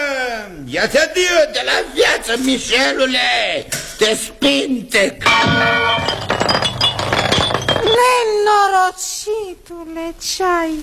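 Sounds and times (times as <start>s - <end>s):
speech: 0.7s - 7.0s, 7.9s - 10.8s
scattered mirror glass fragments clinking: 5.2s - 8.1s
mirror glass shattering: 5.3s - 8.0s.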